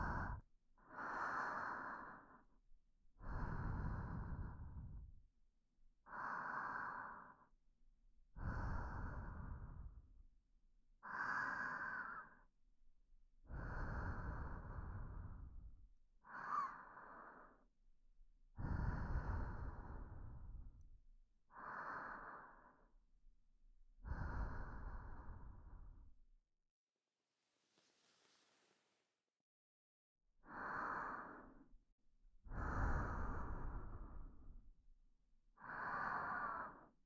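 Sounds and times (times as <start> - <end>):
slow deep breathing during a guided relaxation exercise: 0.0 - 5.3, 6.0 - 7.6, 8.3 - 10.2, 11.0 - 12.5, 13.4 - 17.8, 18.5 - 23.0, 24.0 - 26.1, 30.4 - 34.9, 35.5 - 37.0.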